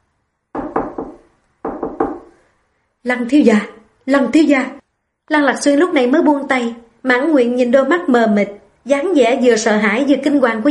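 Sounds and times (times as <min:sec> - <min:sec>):
bodyguard knocking on a door: 0:00.5 - 0:02.4
speech: 0:03.0 - 0:10.6.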